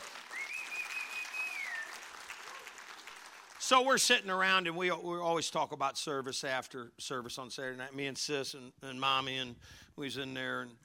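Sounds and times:
room full of people applauding: 0.0s - 4.0s
faint whistle: 0.3s - 2.0s
speech: 3.7s - 10.8s.

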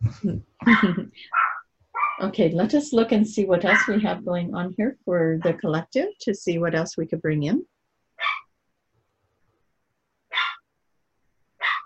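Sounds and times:
speech: 0.1s - 1.4s, 2.2s - 7.7s
small dog barking and yipping: 0.7s - 2.2s, 3.7s - 4.0s, 8.2s - 8.5s, 10.3s - 10.6s, 11.6s - 11.8s.

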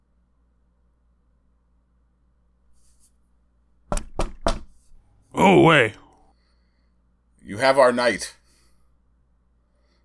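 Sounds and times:
knocking on a door: 3.9s - 4.9s
speech: 5.4s - 6.0s, 7.4s - 8.4s.

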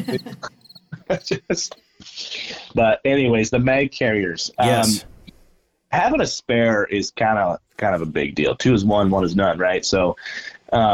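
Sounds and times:
crickets chirping outside: 0.0s - 1.9s
speech: 0.0s - 5.1s, 5.9s - 10.9s
bursts of voice-like sound: 4.6s - 5.0s.

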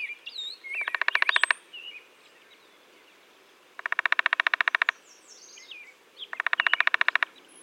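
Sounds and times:
birds chirping softly: 0.0s - 7.6s
downy woodpecker rapid rattling call: 0.7s - 1.6s, 3.8s - 5.0s, 6.2s - 7.4s.

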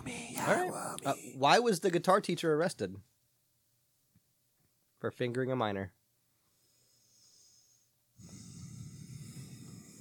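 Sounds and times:
speech: 0.4s - 3.2s, 5.0s - 6.0s
heavy breathing into the microphone: 6.5s - 9.9s.

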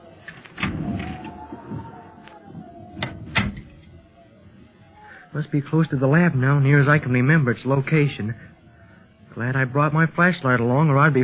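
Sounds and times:
door opening with a drawn-out creak: 0.2s - 4.0s
speech: 5.4s - 8.5s, 9.4s - 11.2s.

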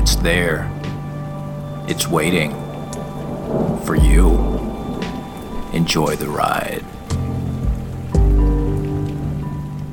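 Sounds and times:
steady rain pattering on a surface: 0.0s - 9.9s
speech: 0.1s - 0.8s, 1.9s - 2.6s, 3.5s - 4.8s, 5.7s - 6.9s.

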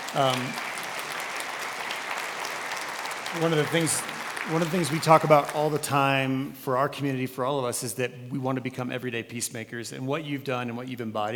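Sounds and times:
crowd clapping: 0.0s - 6.3s
speech: 0.1s - 0.7s, 3.3s - 11.3s.

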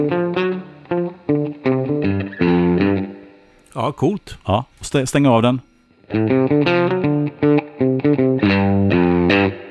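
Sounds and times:
electric guitar chords through tape echo at shortest delay: 0.0s - 3.4s, 5.8s - 9.6s
speech: 3.8s - 7.6s.

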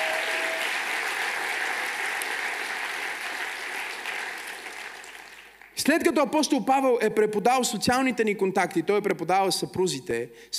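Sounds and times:
church congregation applauding during a sermon: 0.0s - 5.8s
speech: 5.8s - 10.5s.

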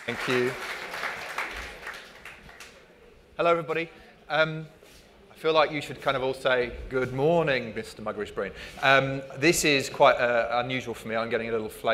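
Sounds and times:
audience applause: 0.0s - 3.0s
speech: 0.1s - 0.8s, 3.4s - 4.8s, 5.4s - 11.9s.

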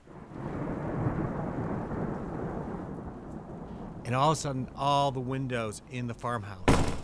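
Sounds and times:
deep rumbling thunder of a summer thunderstorm over a mountain: 0.0s - 5.4s
heavy rain falling at a farmhouse: 0.0s - 7.0s
speech: 4.1s - 6.7s.

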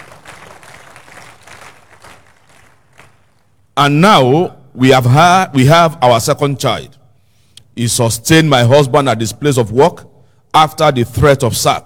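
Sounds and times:
church audience clapping: 0.0s - 3.7s
speech: 3.8s - 7.0s, 7.8s - 11.8s.

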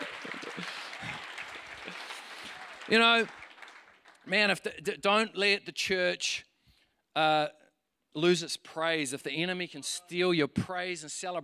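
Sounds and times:
church congregation clapping during a service: 0.0s - 4.6s
speech: 2.9s - 3.4s, 4.3s - 6.5s, 7.2s - 7.6s, 8.2s - 11.4s.

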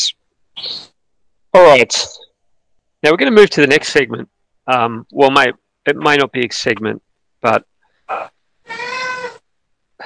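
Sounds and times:
speech: 1.6s - 2.2s, 3.0s - 8.8s
cat meowing wanting to be let out: 8.1s - 9.4s.

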